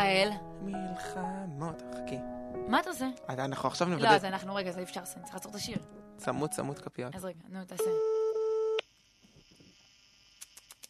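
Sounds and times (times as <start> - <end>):
speech: 0.0 - 8.2
telephone tone while placing a call: 7.8 - 8.8.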